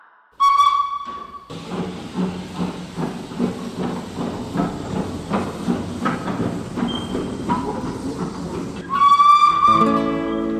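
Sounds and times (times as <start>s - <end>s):
steam train whistle: 0.4s - 1.5s, 8.8s - 10.5s
steam train pulling away from a station platform chuffing: 1.0s - 9.2s
hissing steam from a steam train: 1.5s - 8.8s.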